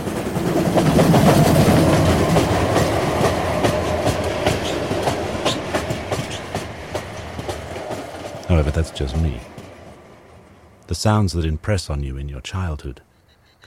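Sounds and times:
steam train wheels clickety-clack: 0.0 - 10.6
steam trains running on rails: 0.0 - 12.3
speech: 8.8 - 9.6, 10.9 - 13.6.

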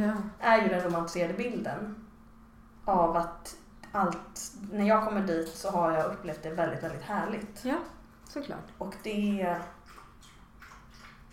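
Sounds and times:
dog lapping water from a bowl: 0.0 - 1.6, 4.1 - 11.3
speech: 0.0 - 2.1, 2.9 - 9.8.

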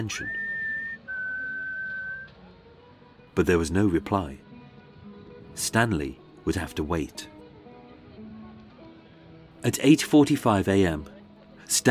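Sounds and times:
speech: 0.0 - 0.4, 3.4 - 4.4, 5.6 - 7.3, 9.6 - 11.8
person in the street whistling up toward second-floor windows: 0.0 - 2.3.

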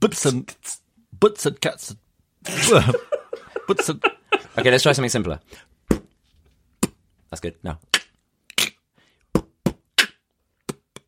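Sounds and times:
speech: 0.0 - 3.1, 3.7 - 5.7, 7.3 - 8.0
laughter: 2.5 - 4.9
beatboxing mouth percussion with kick- and snare-like bursts: 5.9 - 6.2, 6.8 - 7.0, 7.8 - 11.0.

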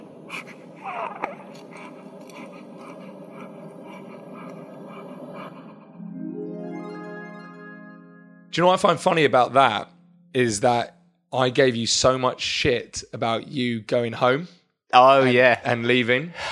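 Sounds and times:
newborn baby breathing with snuffles and wheezy breaths: 0.0 - 6.0
speech: 8.6 - 16.5.

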